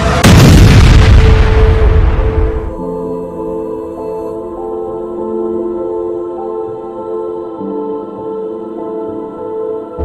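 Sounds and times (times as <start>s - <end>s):
truck bomb explosion: 0.0s - 2.8s.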